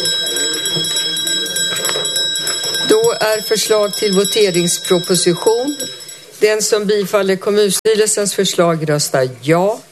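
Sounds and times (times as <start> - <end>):
electric bell ringing to call a municipal council vote: 0.0 - 6.9
speech: 3.2 - 9.9.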